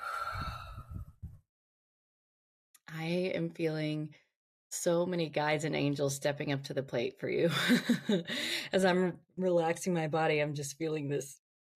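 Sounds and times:
deep inhale and exhale during a guided relaxation: 0:00.0 - 0:01.2
speech: 0:03.0 - 0:11.7.

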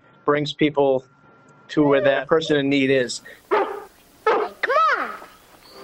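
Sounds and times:
speech: 0:00.3 - 0:03.6
dog giving a high arching yelp: 0:01.8 - 0:02.8, 0:03.5 - 0:05.3
dog barking: 0:03.5 - 0:04.6.

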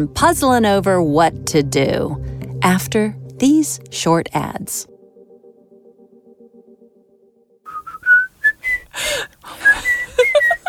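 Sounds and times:
speech: 0:00.0 - 0:04.9
person whistling a jaunty tune: 0:07.7 - 0:10.6.

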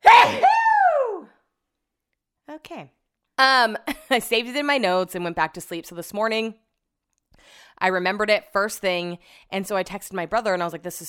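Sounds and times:
loud sneeze: 0:00.0 - 0:00.7
speech: 0:02.7 - 0:06.6, 0:07.4 - 0:11.0.

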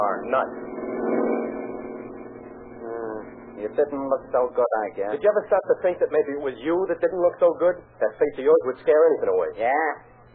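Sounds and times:
speech: 0:00.0 - 0:01.2, 0:03.6 - 0:10.2
car engine humming past: 0:00.0 - 0:06.2.

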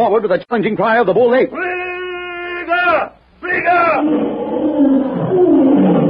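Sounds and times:
speech: 0:00.0 - 0:01.7, 0:02.7 - 0:06.0
lion roaring as it charges: 0:03.8 - 0:06.0.

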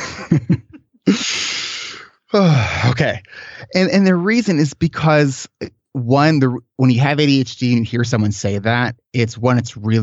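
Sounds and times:
speech: 0:00.3 - 0:00.6, 0:02.3 - 0:10.0
deep breath: 0:01.1 - 0:03.7.

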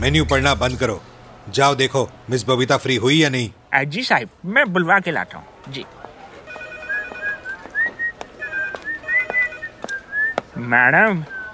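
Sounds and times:
speech: 0:00.0 - 0:06.0, 0:10.6 - 0:11.4
woman whistling a wavering mid-pitched tune: 0:06.9 - 0:10.5.

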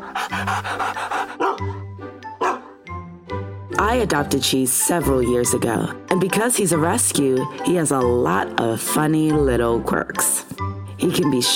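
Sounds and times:
dog panting rapidly and heavily: 0:00.0 - 0:02.8
speech: 0:00.4 - 0:01.1, 0:03.8 - 0:10.3, 0:11.0 - 0:11.5.

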